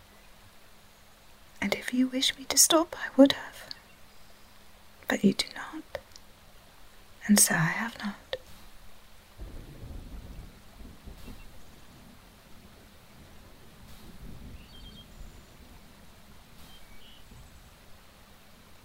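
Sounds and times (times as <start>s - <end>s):
steady rain: 0.0s - 18.8s
speech: 1.9s - 3.7s, 5.1s - 6.0s, 7.2s - 8.2s
deep rolling thunder with sharp cracks: 9.4s - 17.6s.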